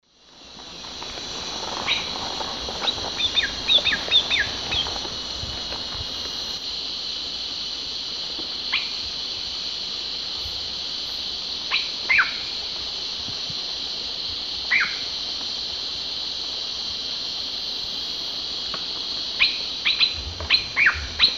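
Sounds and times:
Cacicus sclateri song and calls in the Eastern Lowlands of South America: 0.2 - 21.3.

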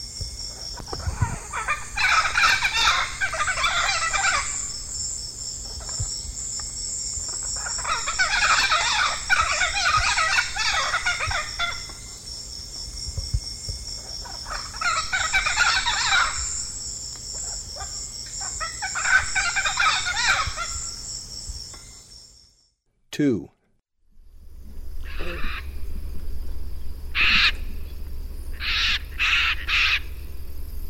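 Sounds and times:
Chestnut-fronted Macaw calling: 0.5 - 6.1, 7.2 - 12.2, 14.1 - 21.1, 25.0 - 25.8, 27.2 - 27.9, 28.5 - 30.2.

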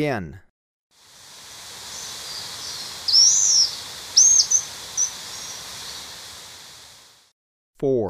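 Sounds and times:
speech: 0.0 - 0.5, 7.8 - 8.0
steady background hiss: 1.0 - 7.3
Slaty-backed chat-tyrant whistling and calling in Ecuador: 1.9 - 6.2.

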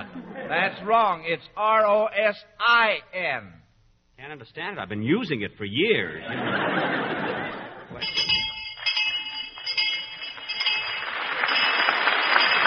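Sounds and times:
laughter: 0.0 - 1.0, 6.1 - 8.3
speech: 0.5 - 3.6, 4.2 - 7.2
quiz show bell ringing: 7.9 - 12.6.

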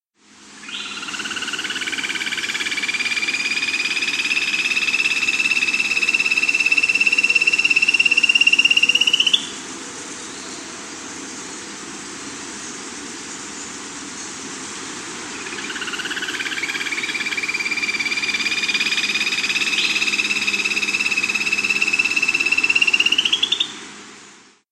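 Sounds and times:
Black-Cheeked Gnateater calling in South America: 0.6 - 9.6, 15.2 - 23.9.

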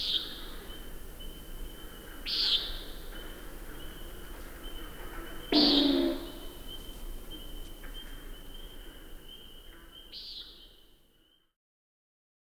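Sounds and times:
common nighthawk calls: 5.5 - 6.8.

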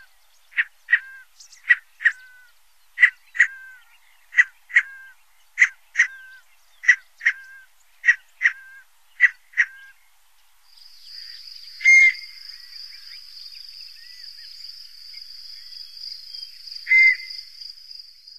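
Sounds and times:
Scaled Quail calling: 0.0 - 10.0, 11.2 - 12.7, 16.9 - 17.4.

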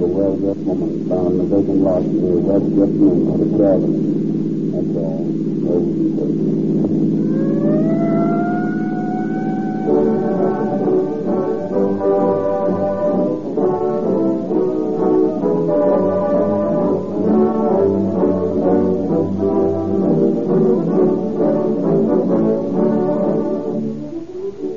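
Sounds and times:
speech: 0.0 - 6.8
police siren wailing: 7.2 - 24.7.

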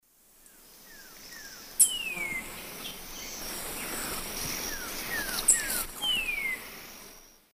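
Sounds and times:
Thlypopsis sordida calling in South American Eastern Lowlands: 0.9 - 6.8.

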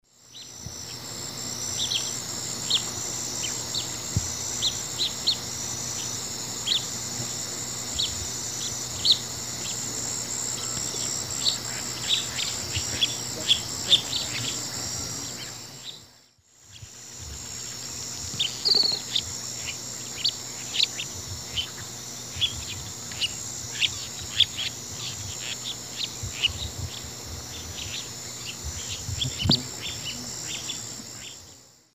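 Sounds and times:
Hydropsalis climacocerca display calls: 0.2 - 31.6
Hydropsalis climacocerca flock calls: 1.7 - 7.0, 8.0 - 9.9, 10.5 - 16.1, 16.7 - 31.4.

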